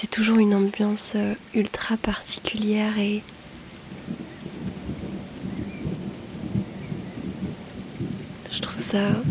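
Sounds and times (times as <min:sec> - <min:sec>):
speech: 0:00.0 - 0:03.4, 0:08.6 - 0:09.2
steady rain pouring: 0:00.0 - 0:09.2
deep rolling thunder rumbling: 0:03.4 - 0:09.2.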